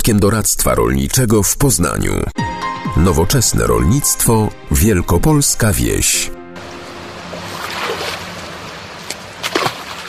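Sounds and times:
speech: 0.1s - 6.4s
rushing water at a fish-breeding pond near Sieraków in Wielkopolska Poland: 6.6s - 10.0s
fish splashing in a fish-breeding pond near Sieraków Poland: 6.7s - 10.0s.

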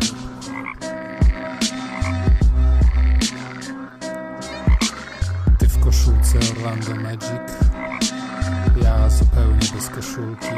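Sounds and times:
toad croaking: 0.0s - 10.5s
speech: 9.8s - 10.5s.

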